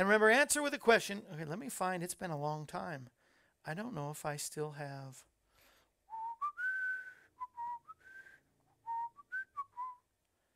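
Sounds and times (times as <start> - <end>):
speech: 0.0 - 5.3
person whistling a short melodic tune: 6.1 - 10.2.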